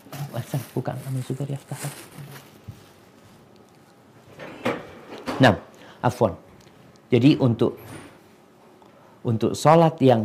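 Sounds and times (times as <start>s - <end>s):
speech: 0.4s - 2.5s, 5.4s - 6.5s, 7.1s - 7.9s, 9.2s - 10.2s
door closing: 4.3s - 5.6s.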